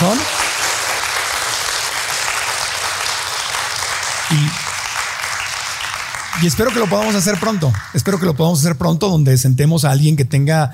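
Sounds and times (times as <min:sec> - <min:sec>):
audience applause: 0:00.0 - 0:08.6
speech: 0:06.4 - 0:10.7.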